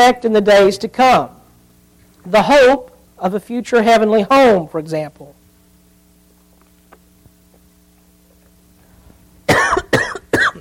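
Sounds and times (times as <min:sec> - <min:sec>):
speech: 0:00.0 - 0:01.4, 0:02.2 - 0:05.4
harsh coughs: 0:09.5 - 0:10.5.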